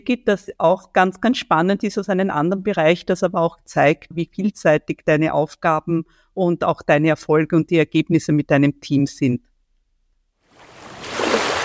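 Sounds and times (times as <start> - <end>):
speech: 0.0 - 9.5
ocean waves crashing: 10.6 - 11.6.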